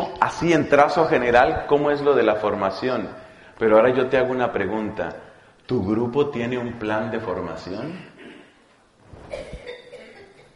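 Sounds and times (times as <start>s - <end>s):
speech: 0.3s - 8.1s
brief quiet nervous cough: 8.0s - 8.7s, 9.3s - 10.5s.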